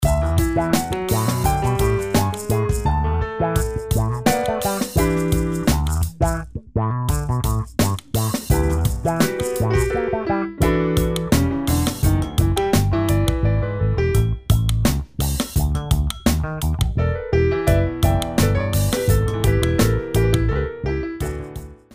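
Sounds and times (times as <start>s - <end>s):
jazz music: 0.0s - 21.9s.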